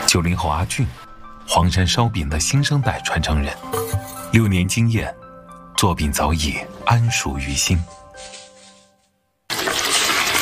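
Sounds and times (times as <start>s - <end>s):
speech: 0.1s - 5.2s, 5.8s - 8.4s
boiling water poured into flour for dough: 9.5s - 10.3s.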